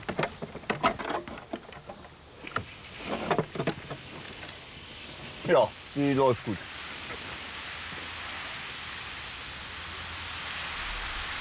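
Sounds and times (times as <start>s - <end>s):
water spraying from a hose nozzle onto water buffalo: 2.3s - 11.4s
speech: 5.5s - 6.7s.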